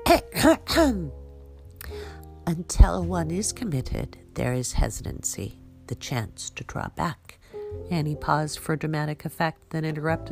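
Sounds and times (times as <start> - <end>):
speech: 0.1 - 1.2, 2.5 - 10.3
person clearing throat in voiced bursts: 0.3 - 1.1.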